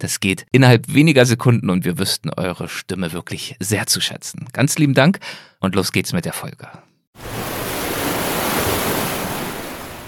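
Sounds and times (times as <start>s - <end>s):
speech: 0.0s - 7.5s
ocean waves breaking: 7.2s - 10.0s.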